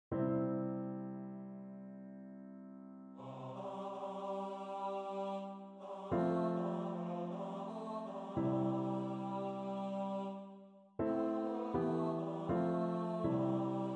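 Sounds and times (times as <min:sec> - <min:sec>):
piano: 0:00.1 - 0:13.9
person singing a liturgical chant: 0:03.2 - 0:13.9.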